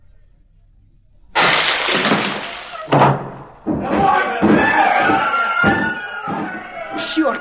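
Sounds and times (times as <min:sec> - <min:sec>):
breaking debris: 0:01.4 - 0:05.8
door being broken down: 0:01.4 - 0:06.8
heavy crashing and splintering blows on a door: 0:01.4 - 0:07.0
agitated voices: 0:03.6 - 0:07.3.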